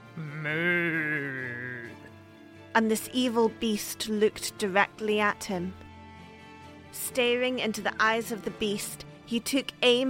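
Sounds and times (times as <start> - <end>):
person imitating cow mooing: 0.0 - 2.1
speech: 0.2 - 0.8, 2.8 - 5.8, 7.0 - 10.0.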